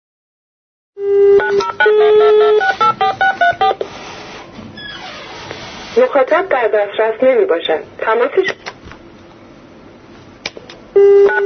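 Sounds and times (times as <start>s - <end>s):
telephone dial tone: 1.0s - 3.8s, 11.0s - 11.4s
speech: 6.0s - 8.7s.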